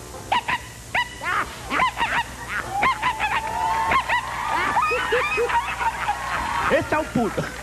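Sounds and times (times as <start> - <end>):
faint hum: 0.0 - 7.6
person imitating a dog barking: 0.3 - 4.2
laughter: 1.3 - 7.6
speech: 7.0 - 7.6.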